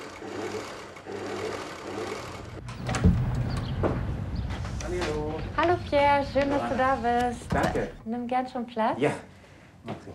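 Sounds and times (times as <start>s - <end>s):
sewing machine running: 0.0s - 2.6s
sewing machine mechanical clunks: 2.6s - 4.6s, 7.0s - 8.1s
speech: 5.6s - 10.1s.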